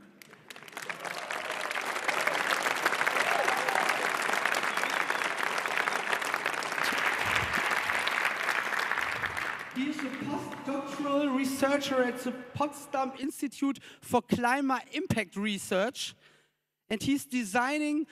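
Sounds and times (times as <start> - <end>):
crowd applauding: 0.0 - 10.9
speech: 10.0 - 16.3, 16.9 - 18.1.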